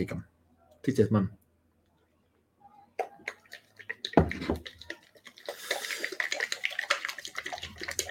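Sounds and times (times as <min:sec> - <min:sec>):
speech: 0:00.0 - 0:01.4
e-liquid sloshing in a small bottle being shaken: 0:03.0 - 0:08.0.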